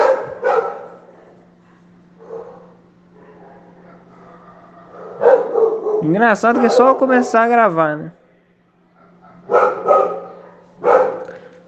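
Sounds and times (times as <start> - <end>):
dogs yipping: 0.0 - 1.2, 2.2 - 7.4, 9.0 - 11.4
dogs barking: 0.0 - 7.7, 8.9 - 11.6
steady low hum: 0.0 - 11.6
speech: 6.0 - 8.2.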